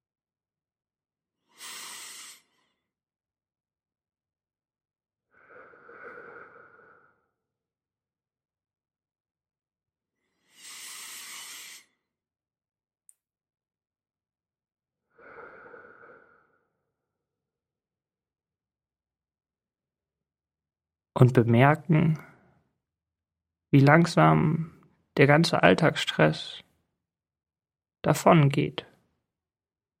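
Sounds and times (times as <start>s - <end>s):
slow deep breathing during a guided relaxation exercise: 5.2s - 7.6s, 10.2s - 12.1s, 15.0s - 17.3s
speech: 21.2s - 22.3s, 23.7s - 26.6s, 28.0s - 28.9s.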